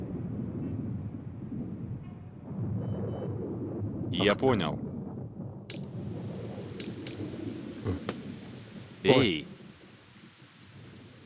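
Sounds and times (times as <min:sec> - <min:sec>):
storm rumbling low: 0:00.0 - 0:11.2
speech: 0:04.2 - 0:04.9, 0:09.0 - 0:09.5
steady rain hissing: 0:05.7 - 0:11.2
person shouting over the downpour: 0:09.1 - 0:09.4.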